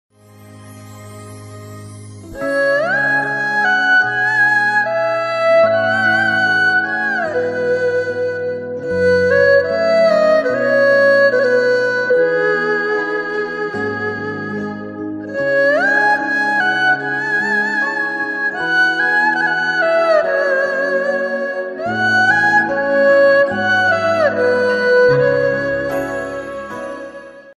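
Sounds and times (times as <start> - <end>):
sad flute background music ringtone: 0.1 - 27.5.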